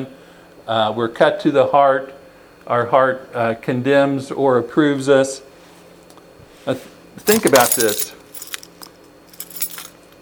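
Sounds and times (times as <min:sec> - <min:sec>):
speech: 0:00.0 - 0:05.5, 0:06.6 - 0:08.2
bunch of keys jangling: 0:07.2 - 0:10.0.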